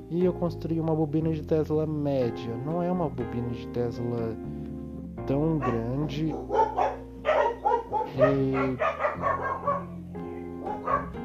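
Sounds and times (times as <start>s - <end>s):
speech: 0.1s - 4.6s, 5.3s - 6.8s, 8.1s - 9.3s
dog barking: 5.5s - 10.0s, 10.6s - 11.2s.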